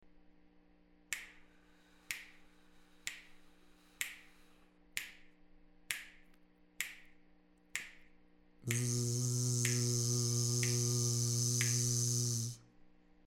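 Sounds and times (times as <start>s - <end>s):
square wave hiss: 8.7s - 12.6s.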